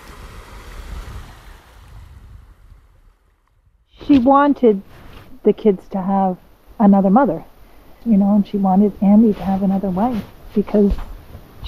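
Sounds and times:
sea waves washing onto a shore by woods: 0:00.0 - 0:03.5
speech: 0:04.1 - 0:11.6.

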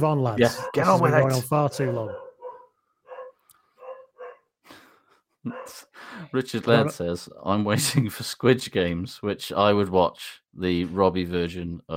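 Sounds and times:
speech: 0:00.0 - 0:02.2, 0:05.4 - 0:11.9
dog barking: 0:00.4 - 0:01.1, 0:01.7 - 0:04.5, 0:05.5 - 0:05.9.

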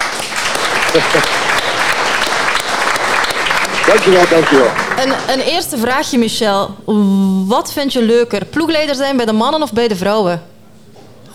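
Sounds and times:
applause from a small crowd: 0:00.0 - 0:05.8
laughter: 0:00.4 - 0:05.4
speech: 0:01.0 - 0:01.5, 0:03.9 - 0:10.5.

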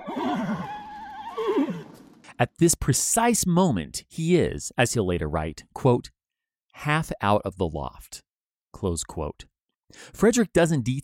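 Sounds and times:
horse whinnying in a stable: 0:00.0 - 0:02.1
speech: 0:02.4 - 0:06.2, 0:06.8 - 0:11.0.

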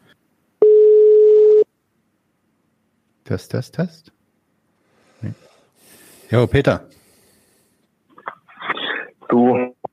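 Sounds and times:
electronic telephone ringing tone during outgoing call: 0:00.6 - 0:01.7
speech: 0:03.3 - 0:04.2, 0:05.2 - 0:05.5, 0:06.3 - 0:07.0.

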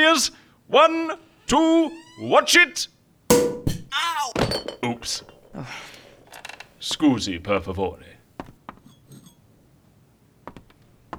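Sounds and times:
speech: 0:00.1 - 0:03.4, 0:04.8 - 0:05.9, 0:06.8 - 0:08.2
champagne glasses clinking: 0:03.3 - 0:07.8, 0:08.9 - 0:09.4.

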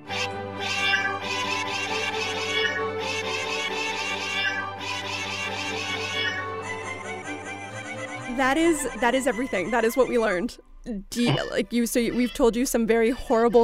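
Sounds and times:
crowd of cats meowing: 0:00.1 - 0:07.5, 0:11.2 - 0:12.6
speech: 0:08.4 - 0:13.6.

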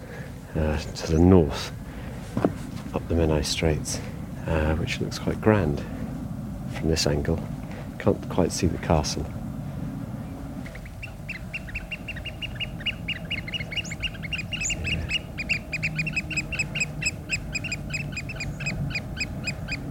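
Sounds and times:
low rumble of wind or water: 0:00.0 - 0:19.8
speech: 0:00.5 - 0:01.8, 0:02.4 - 0:06.0, 0:06.8 - 0:09.4
oystercatchers calling: 0:10.2 - 0:19.8.

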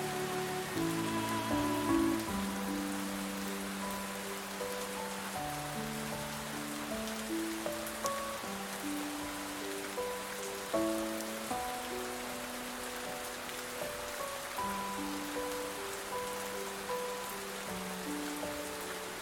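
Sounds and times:
heavy rain pouring: 0:00.0 - 0:19.2
soft calming music with sustained low notes: 0:00.0 - 0:19.2.

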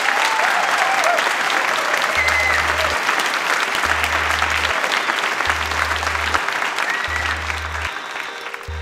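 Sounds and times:
large audience applauding: 0:00.0 - 0:08.7
low rhythmic hum: 0:02.2 - 0:03.1, 0:03.8 - 0:08.7.

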